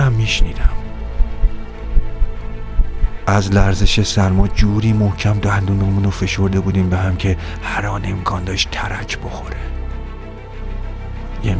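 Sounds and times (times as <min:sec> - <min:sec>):
speech: 0:00.3 - 0:00.7, 0:03.3 - 0:09.7
deep pounding heartbeat: 0:00.4 - 0:03.9.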